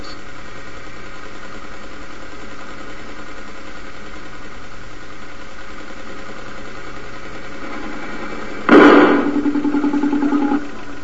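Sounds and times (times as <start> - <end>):
hydrogen research engine running roughly on bench rig: 0.0 - 11.0
hydrogen research engine backfiring on bench rig: 6.1 - 11.0.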